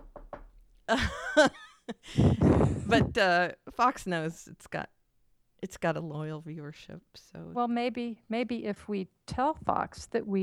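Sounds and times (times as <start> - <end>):
light knocks on wood: 0.0 - 0.7
speech: 0.9 - 5.0, 5.6 - 10.4.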